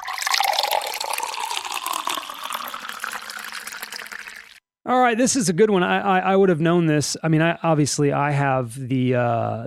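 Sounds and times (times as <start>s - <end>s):
water gurgling into a water cooler jug: 0.0s - 4.6s
speech: 4.9s - 9.6s.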